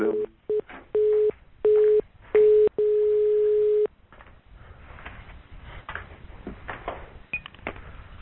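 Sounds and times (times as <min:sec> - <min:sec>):
telephone ringing tones: 0:00.0 - 0:03.9.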